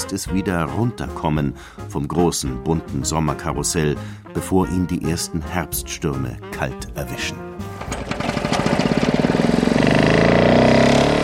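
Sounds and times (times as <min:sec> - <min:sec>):
speech: 0:00.1 - 0:08.0
small petrol lawn mower engine sputtering and revving: 0:07.6 - 0:11.2.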